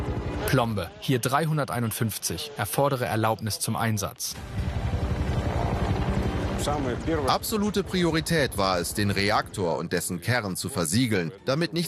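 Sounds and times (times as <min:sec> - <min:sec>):
speech: 0:00.5 - 0:04.6, 0:06.6 - 0:11.8
helicopters circling a burning reactor, rotors thumping: 0:04.4 - 0:09.5.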